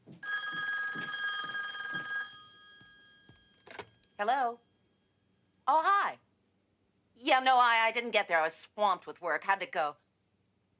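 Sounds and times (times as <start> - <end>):
telephone bell ringing: 0.2 - 5.4
speech: 4.2 - 4.7, 5.7 - 6.2, 7.2 - 10.0.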